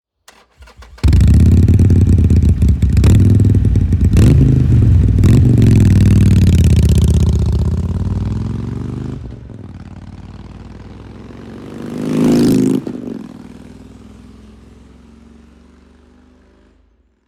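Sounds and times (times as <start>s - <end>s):
motorcycle open exhaust: 0.6s - 11.1s.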